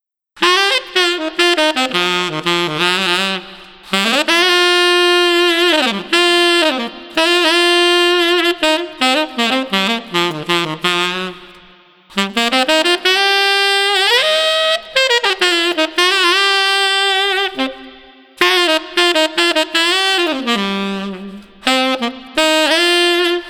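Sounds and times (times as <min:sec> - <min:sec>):
street saxophone playing soul: 0:00.4 - 0:23.4.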